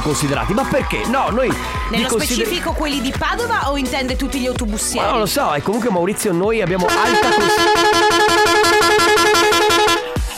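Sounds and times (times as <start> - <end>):
speech: 0.0 - 8.4
long car horn blast: 6.8 - 10.2.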